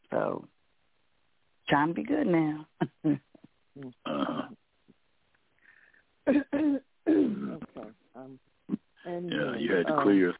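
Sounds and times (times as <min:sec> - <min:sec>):
speech: 0:01.7 - 0:04.6, 0:06.3 - 0:10.3
person clearing the throat after drinking water: 0:04.1 - 0:04.5, 0:06.3 - 0:07.9.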